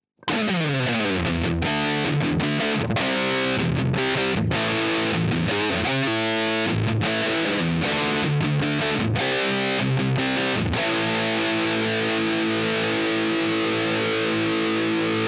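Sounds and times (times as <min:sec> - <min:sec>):
distorted electric guitar: 0:00.2 - 0:15.2.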